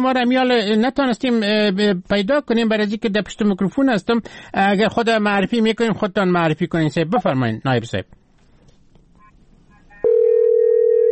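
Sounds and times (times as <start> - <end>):
speech: 0.0 - 8.2
steady telephone line ringing tone during call: 10.0 - 11.1.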